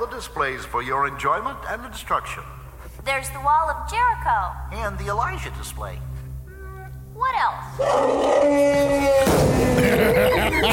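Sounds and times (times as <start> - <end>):
speech: 0.1 - 6.1, 7.2 - 10.7
animatronic display elephant trumpeting: 7.7 - 9.5
laughter: 8.8 - 10.7.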